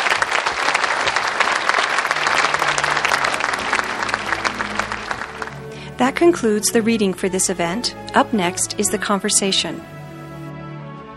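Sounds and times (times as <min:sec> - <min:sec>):
applause from a sizable audience: 0:00.0 - 0:06.0
speech: 0:06.0 - 0:10.0.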